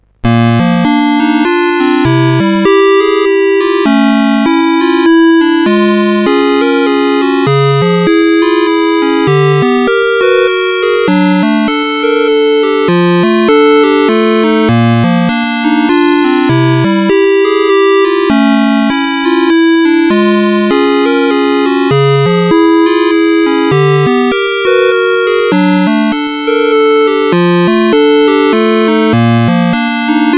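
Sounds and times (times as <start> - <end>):
music box on a CSG8580R5 sound chip: 0.3 - 30.3.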